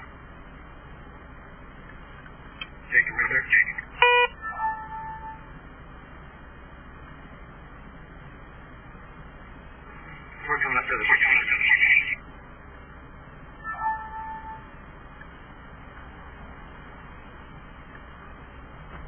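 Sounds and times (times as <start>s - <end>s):
road rumble of moving street traffic: 0.0s - 19.0s
speech: 3.2s - 3.8s
brief burst of horn-like tones: 4.0s - 5.4s.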